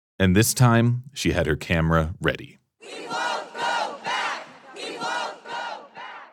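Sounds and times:
speech: 0.2s - 3.7s
large protest crowd chanting in unison outside a courthouse: 2.8s - 6.3s.

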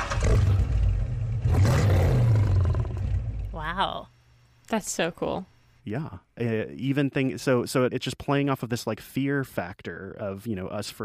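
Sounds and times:
deep rumbling car engine: 0.0s - 3.8s
growling animal roar: 0.1s - 3.6s
speech: 3.8s - 4.1s, 4.7s - 11.0s.

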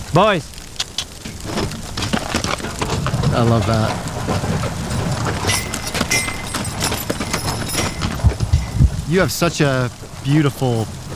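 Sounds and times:
horse hooves clopping pulling a wagon on a ranch: 0.0s - 11.1s
horse-drawn wagon rolling rumble on a ranch: 0.0s - 11.1s
speech: 0.2s - 0.6s, 3.4s - 6.2s, 9.1s - 11.0s
sharp knocks and clatters of a horse-drawn wagon: 0.8s - 9.4s.

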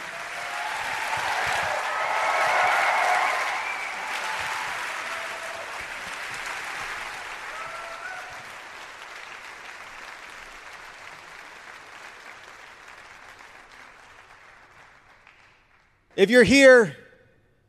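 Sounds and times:
faint whoops: 0.0s - 5.7s, 7.5s - 8.4s
audience clapping and cheering: 0.0s - 16.8s
speech: 16.2s - 17.0s.

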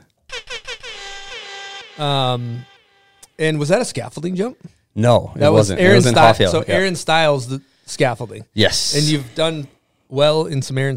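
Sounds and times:
air horn blasts: 0.3s - 3.5s
speech: 2.0s - 2.7s, 3.4s - 10.9s.

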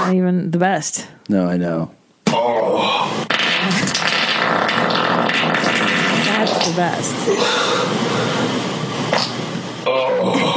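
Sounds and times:
speech: 0.1s - 10.5s
loud fart: 2.2s - 8.0s, 9.1s - 10.5s.

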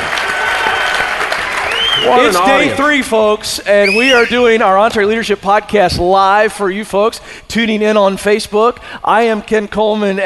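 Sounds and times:
large live audience applause at a leadership summit: 0.0s - 2.8s
faint murmur of voices: 2.0s - 3.0s
speech: 2.0s - 10.2s.

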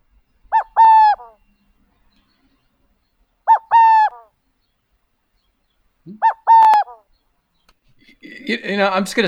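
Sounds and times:
Western burrowing owl song: 0.5s - 1.4s, 3.4s - 4.4s, 6.1s - 7.1s
speech: 8.5s - 9.2s.

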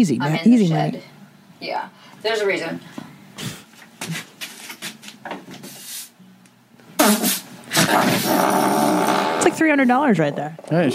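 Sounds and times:
speech: 0.0s - 3.5s, 9.6s - 10.9s
farts: 7.0s - 9.8s.

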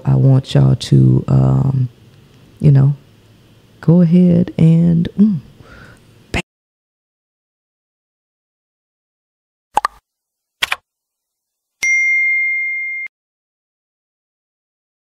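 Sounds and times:
speech: 0.2s - 2.0s, 2.6s - 3.0s, 3.8s - 5.5s
sharp clicks: 10.6s - 10.8s
notification bell sound effect ding: 11.8s - 13.1s.

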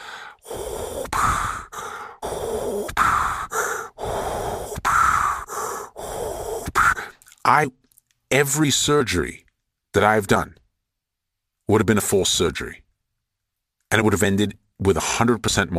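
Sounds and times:
rapid heavy hyperventilating breaths: 0.0s - 7.2s
speech: 7.5s - 9.4s, 10.0s - 10.6s, 11.7s - 12.8s, 13.9s - 15.7s.

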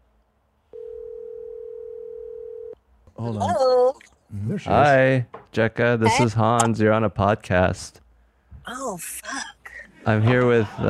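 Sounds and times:
telephone dial tone while a phone call is being placed: 0.8s - 2.8s
speech: 3.2s - 8.0s, 8.7s - 10.8s
laughter: 9.9s - 10.8s.

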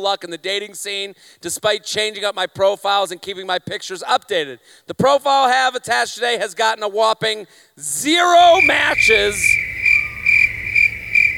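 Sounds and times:
speech: 0.0s - 9.8s
crickets chirping in a continuous high-pitched trill: 8.0s - 11.3s.

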